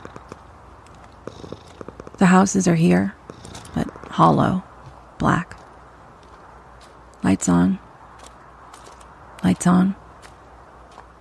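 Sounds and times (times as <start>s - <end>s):
cat purring: 0.0s - 4.6s
speech: 2.2s - 3.2s, 4.2s - 5.6s, 7.2s - 7.8s, 9.4s - 10.0s.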